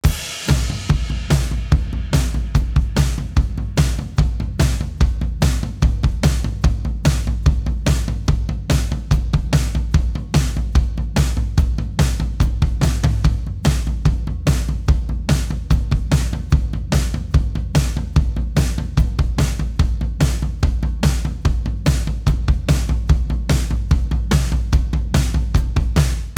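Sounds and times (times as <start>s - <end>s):
drum bus: 0.0s - 26.3s.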